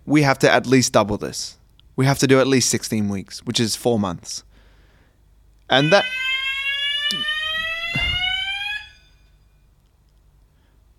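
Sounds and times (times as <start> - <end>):
speech: 0.1 - 4.5, 5.7 - 6.3, 7.1 - 7.3
fire alarm electronic tone going off during a test: 5.7 - 9.5.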